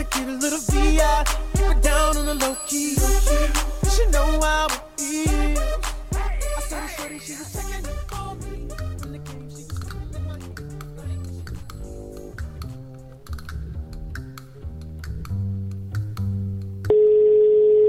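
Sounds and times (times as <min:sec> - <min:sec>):
music with a steady beat on a radio broadcast: 0:00.0 - 0:16.8
continuous telephone line tone: 0:16.9 - 0:17.8.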